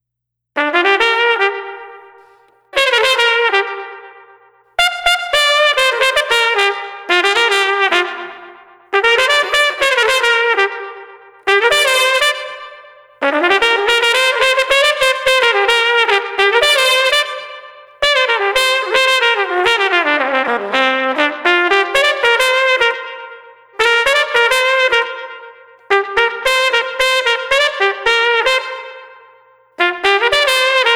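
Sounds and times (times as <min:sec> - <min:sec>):
hip street trumpet melody: 0:00.6 - 0:30.9.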